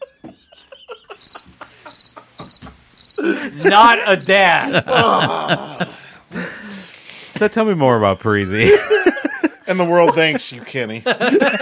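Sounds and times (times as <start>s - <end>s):
crickets chirping: 0.0s - 4.8s
laughter: 0.0s - 11.5s
speech: 3.2s - 5.9s, 7.4s - 9.0s, 9.7s - 11.5s.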